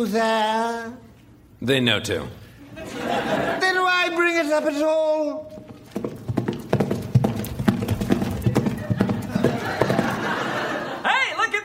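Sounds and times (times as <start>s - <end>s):
speech: 0.0s - 1.0s, 1.6s - 3.6s, 4.4s - 5.6s
laughter: 2.6s - 4.0s, 8.3s - 11.6s
horse hooves clip-clopping: 5.4s - 10.4s.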